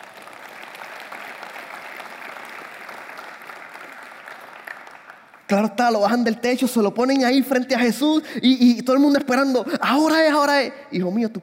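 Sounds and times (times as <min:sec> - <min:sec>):
congregation applauding loudly: 0:00.0 - 0:05.6
speech: 0:05.5 - 0:11.4.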